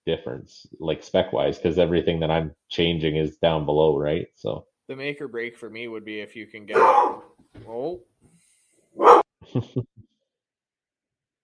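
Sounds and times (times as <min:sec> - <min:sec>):
speech: 0:00.1 - 0:08.1, 0:09.0 - 0:10.0
dog barking: 0:06.7 - 0:07.3, 0:09.0 - 0:09.3.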